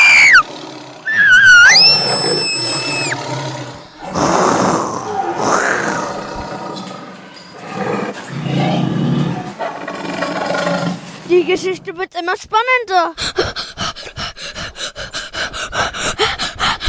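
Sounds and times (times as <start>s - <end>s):
tiger roaring in a jungle as it attacks: 0.1s - 11.3s
tiger snarling and growling: 0.1s - 11.3s, 13.4s - 16.8s
speech: 11.5s - 13.6s.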